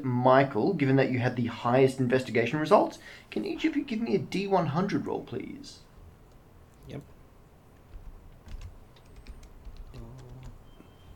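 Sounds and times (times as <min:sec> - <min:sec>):
speech: 0:00.0 - 0:05.8, 0:06.9 - 0:07.1
typing on a computer keyboard: 0:07.9 - 0:11.1.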